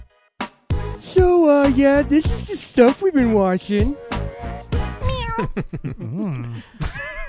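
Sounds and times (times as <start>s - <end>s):
speech: 1.0s - 4.1s, 5.4s - 6.8s
person imitating cat meows: 5.0s - 5.6s
laughter: 5.4s - 7.2s.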